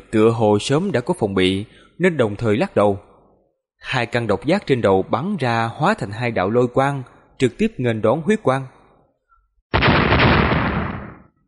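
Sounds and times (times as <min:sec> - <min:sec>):
speech: 0:00.1 - 0:03.1, 0:03.8 - 0:08.8
loud explosive boom from a fantasy battle clash: 0:09.8 - 0:11.3.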